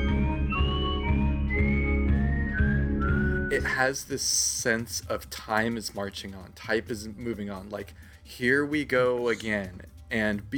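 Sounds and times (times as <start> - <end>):
eerie wavering whistle-like melody: 0.0 - 3.8
steady droning musical backing: 0.0 - 4.0
speech: 3.5 - 10.5.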